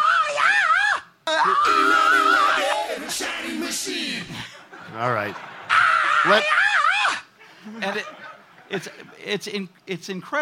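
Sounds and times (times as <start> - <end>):
high-pitched rock singer shrieking: 0.0 - 3.1, 5.7 - 7.3
speech: 4.9 - 5.5, 6.2 - 6.6, 7.7 - 10.3.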